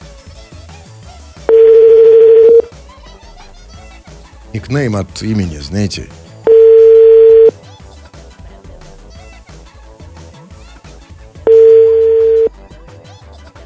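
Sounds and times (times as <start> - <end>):
faint rhythmic background: 0.0 - 13.6
unanswered phone call ringback tones: 1.5 - 2.7, 6.4 - 7.5, 11.4 - 12.5
speech: 4.5 - 6.2.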